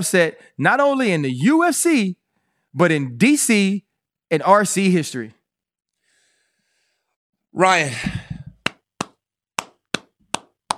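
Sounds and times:
speech: 0.0s - 2.2s, 2.8s - 5.4s, 7.6s - 8.3s
hand claps: 8.3s - 10.7s.

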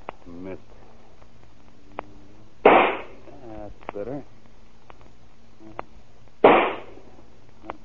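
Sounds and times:
speech: 0.3s - 0.8s
single rifle shot fired in a yard: 2.6s - 3.2s, 6.4s - 7.0s.

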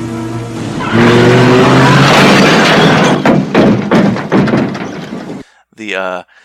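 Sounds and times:
drag racing car engines revving in a film scene: 0.6s - 3.2s
heavy thuds and crashes: 0.8s - 5.4s
person speaking: 5.7s - 6.3s.

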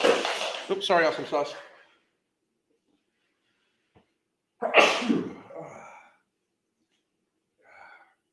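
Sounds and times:
speech: 0.7s - 1.7s
loud sharp sneeze set off by looking up into a light: 4.6s - 5.8s.

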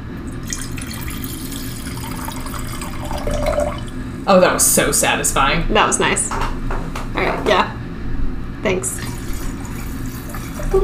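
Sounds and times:
wine pouring into a glass: 0.2s - 4.0s, 9.0s - 10.8s
speech: 4.3s - 6.6s, 7.5s - 7.8s, 8.6s - 9.0s.

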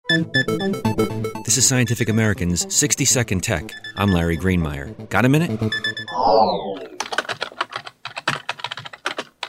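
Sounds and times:
speech: 0.1s - 6.9s
descending whoosh: 5.4s - 6.9s
typing on a computer keyboard: 6.8s - 9.4s.

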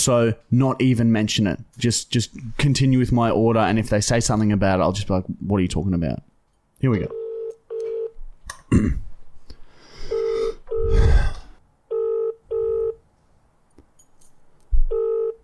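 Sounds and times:
speech: 0.0s - 7.2s, 8.7s - 9.0s
outgoing phone call to a business ringing on the line: 7.0s - 8.2s, 10.1s - 11.0s, 11.9s - 13.0s, 14.9s - 15.4s
breathy noises: 9.5s - 11.6s.

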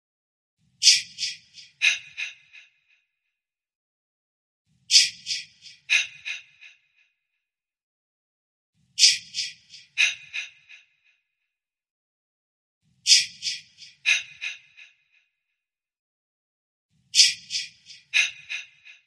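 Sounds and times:
whispered breathy chant: 4.9s - 6.6s, 9.0s - 10.7s, 13.1s - 14.8s, 17.2s - 18.8s.

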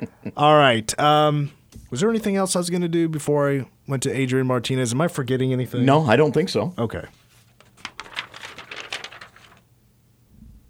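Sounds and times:
speech: 0.0s - 7.2s
paper shuffling and rustling: 7.1s - 9.7s.

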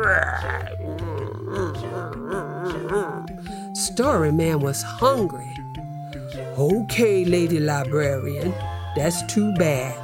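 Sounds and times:
voice imitating a growling stomach: 0.0s - 3.5s
speech: 3.9s - 5.6s, 6.6s - 10.0s.

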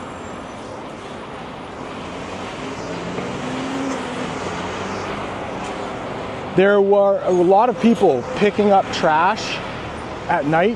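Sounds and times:
bus rumbling past on a busy street: 0.0s - 10.7s
steady traffic hum: 0.0s - 10.7s
speech: 6.6s - 9.6s, 10.3s - 10.7s.

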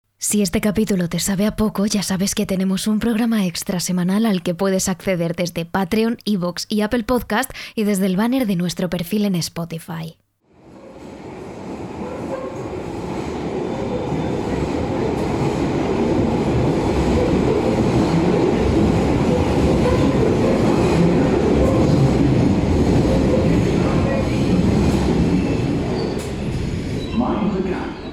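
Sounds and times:
speech: 0.3s - 10.2s
London Underground metro train running on tracks: 10.5s - 28.1s.

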